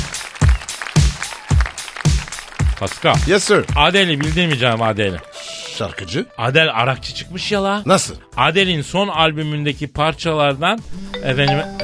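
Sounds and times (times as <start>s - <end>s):
speech: 2.8s - 11.8s
mobile phone ringtone playing a bright tonal melody: 11.1s - 11.8s.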